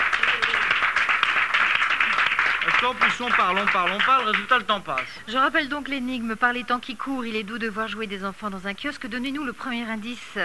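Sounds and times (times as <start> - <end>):
studio audience applause during a game show: 0.0 - 5.2
speech: 2.8 - 10.4.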